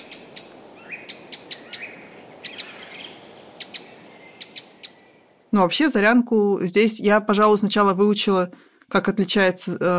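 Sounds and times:
Eurasian wren call notes: 0.0 - 2.8, 3.6 - 5.0
faint steady hiss of insects: 0.0 - 5.7
speech: 5.5 - 9.9.

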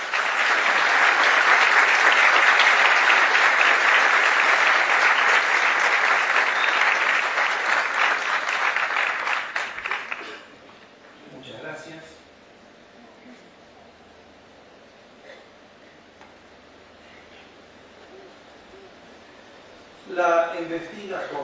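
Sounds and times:
audience applause welcoming a speaker at a theology conference lecture: 0.0 - 10.4.

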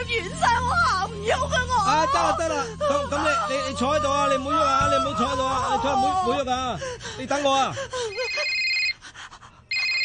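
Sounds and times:
speech: 0.1 - 8.2
telephone ringing on the floor with a shrill electronic trill: 8.1 - 9.0, 9.7 - 10.0.

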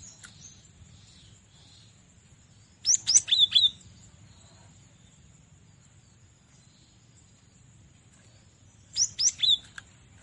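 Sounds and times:
Cinereous tit giving bright high whistled notes: 2.8 - 3.8, 8.9 - 9.7.

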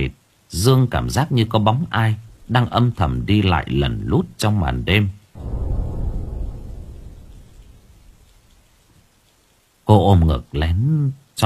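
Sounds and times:
speech: 0.0 - 5.6, 9.9 - 11.4
rain falling outside at night: 0.0 - 10.7
deep low rumble: 5.4 - 8.9.

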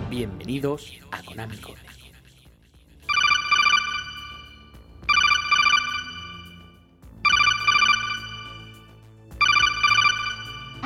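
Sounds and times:
speech: 0.2 - 2.0
incoming call ringing in a video game: 3.1 - 10.8.

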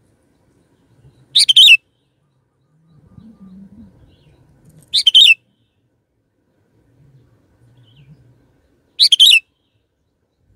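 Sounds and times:
faint low rumble: 0.0 - 10.5
sooty-headed bulbul singing: 0.7 - 5.8, 7.8 - 10.3.

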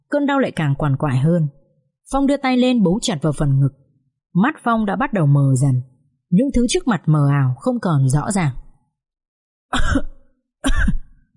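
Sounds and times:
speech: 0.1 - 8.6, 9.7 - 11.0
person coughing up blood while gripping a painful chest: 9.7 - 11.2.

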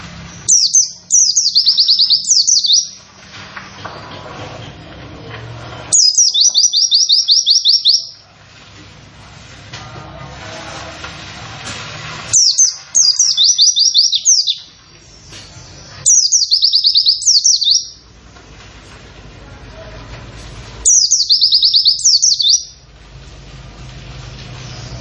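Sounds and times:
low background hum: 0.0 - 24.9
white-eye singing rapid high downslurred wit notes: 0.4 - 3.0, 5.9 - 8.2, 12.4 - 15.3, 16.1 - 18.0, 20.8 - 22.8.

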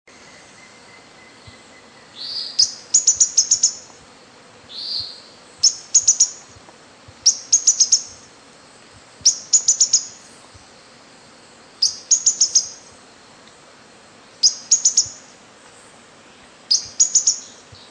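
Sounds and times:
faint low background noise: 0.1 - 17.8
bird high sharp chirps: 0.2 - 4.0, 4.7 - 6.6, 7.2 - 8.3, 9.2 - 10.6, 11.8 - 12.9, 14.3 - 15.3, 16.3 - 17.8.

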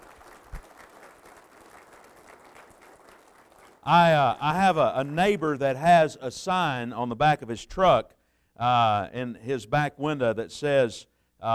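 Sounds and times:
congregation applauding military veterans during a church service: 0.0 - 6.1
speech: 3.8 - 11.5.

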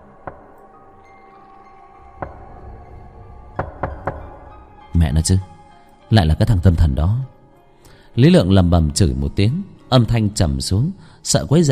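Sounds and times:
knocking on a door in a hospital corridor: 0.1 - 0.6, 2.2 - 4.6
speech: 5.1 - 5.5, 6.1 - 7.3, 8.2 - 11.7.

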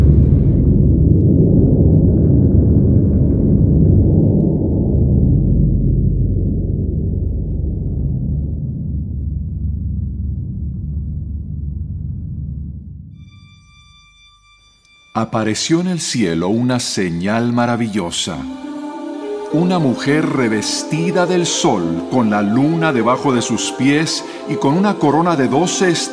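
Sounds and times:
thunder and earthquake rumble sound effect: 0.0 - 13.2
speech: 15.2 - 18.7, 19.5 - 26.1.

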